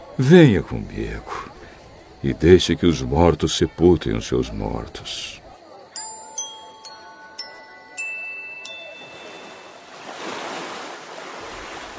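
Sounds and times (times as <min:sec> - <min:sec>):
speech: 0:00.2 - 0:01.5, 0:02.2 - 0:05.4
bright chime strikes: 0:06.0 - 0:10.0
rough waves on a stormy lake: 0:08.7 - 0:11.9
gusting wind over a stormy lake: 0:09.0 - 0:11.9.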